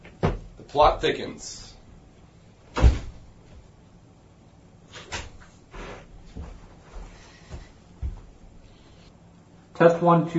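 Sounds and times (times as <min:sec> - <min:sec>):
speech: 0:00.7 - 0:01.6, 0:09.8 - 0:10.3
heavy door of a recording booth thudding shut: 0:02.7 - 0:03.2.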